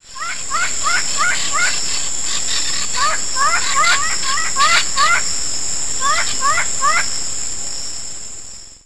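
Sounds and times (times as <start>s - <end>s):
Yellow-crowned Amazon parrot calling: 0.0s - 5.3s, 6.0s - 7.1s.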